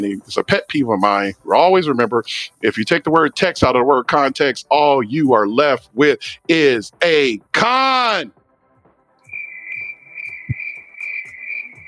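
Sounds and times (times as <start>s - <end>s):
speech: 0.0s - 8.4s
crickets chirping in a high-pitched trill: 9.3s - 11.8s.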